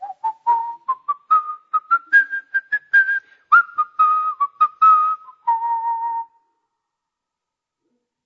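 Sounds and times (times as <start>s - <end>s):
person whistling a hymn melody: 0.0s - 6.4s.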